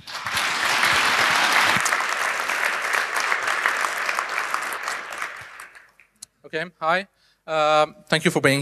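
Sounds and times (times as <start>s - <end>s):
sustained applause from a sizable audience: 0.0s - 6.1s
speech: 6.5s - 8.6s.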